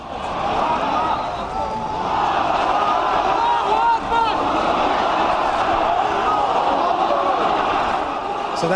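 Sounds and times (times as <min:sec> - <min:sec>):
large crowd shouting and chanting in anger on mosque steps after Friday prayers: 0:00.0 - 0:08.7.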